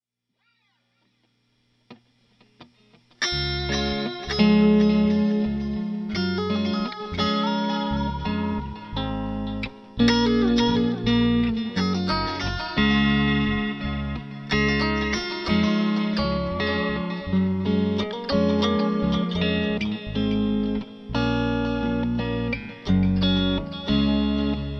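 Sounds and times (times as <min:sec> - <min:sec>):
Strat electric guitar: 0:00.4 - 0:24.7.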